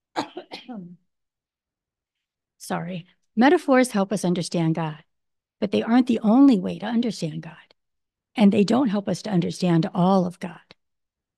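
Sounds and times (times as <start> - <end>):
cough: 0.1 - 1.0
speech: 0.7 - 1.0, 2.7 - 7.6, 8.4 - 10.7.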